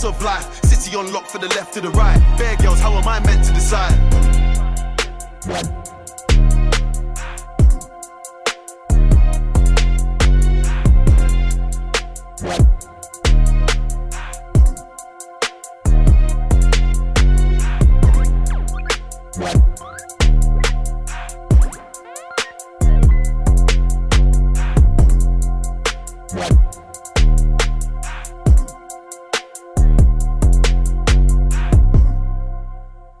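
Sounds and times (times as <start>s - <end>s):
speech: 0.0s - 4.6s, 5.4s - 6.6s, 12.4s - 12.7s
grime rap track with booming sub-bass and punchy beat: 0.0s - 33.1s.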